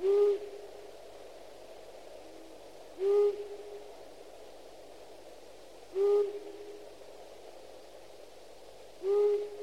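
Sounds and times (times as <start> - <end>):
owl hooting at night: 0.0 - 0.6, 3.0 - 3.7, 5.9 - 6.8, 9.0 - 9.6.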